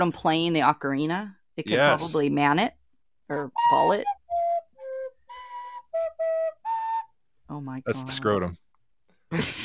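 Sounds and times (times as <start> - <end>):
speech: 0.0 - 4.2, 7.5 - 8.6, 9.3 - 9.6
recorder playing breathy notes: 3.3 - 8.3.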